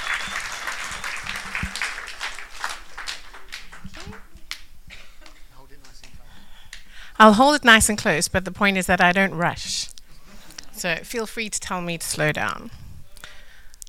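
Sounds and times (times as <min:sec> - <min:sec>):
crowd applauding with overlapping hand claps: 0:00.0 - 0:06.0
speech: 0:07.2 - 0:09.8, 0:10.8 - 0:12.8.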